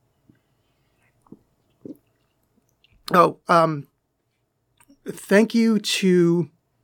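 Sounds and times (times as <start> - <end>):
soft sips from a drink: 0.4 - 3.0
speech: 3.1 - 3.9, 5.1 - 6.6.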